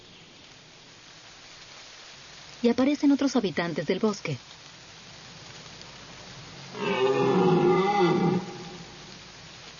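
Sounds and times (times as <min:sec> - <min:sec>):
speech: 0:02.6 - 0:04.6
male deer bellowing in rut in an autumn forest: 0:06.7 - 0:09.1.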